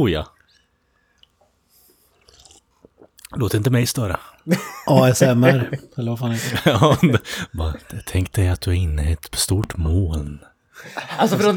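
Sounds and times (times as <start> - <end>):
speech: 0.0 - 0.3, 3.3 - 11.5
wet mouth noises from someone sipping a cola: 0.4 - 3.5
laughter: 4.5 - 7.8, 10.8 - 11.5.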